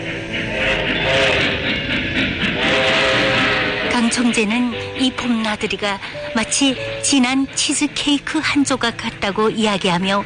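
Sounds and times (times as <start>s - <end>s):
train rolling along rails: 0.0s - 10.2s
speech: 4.3s - 10.2s.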